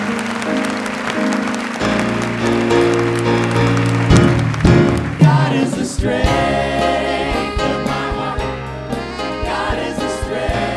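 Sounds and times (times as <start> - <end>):
church audience clapping after a prayer: 0.0 - 6.0
sustained organ or keyboard chords: 0.0 - 10.7.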